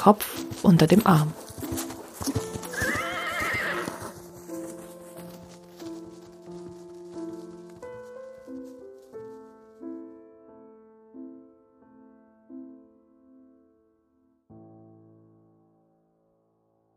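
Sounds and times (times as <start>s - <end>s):
speech: 0.0s - 1.4s
horse hooves clip-clopping: 0.0s - 9.9s
horse neighing: 2.2s - 4.2s.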